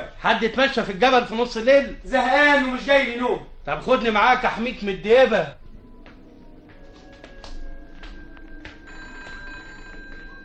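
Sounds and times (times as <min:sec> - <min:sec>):
speech: 0:00.2 - 0:05.6
telephone bell ringing at night: 0:07.0 - 0:10.4.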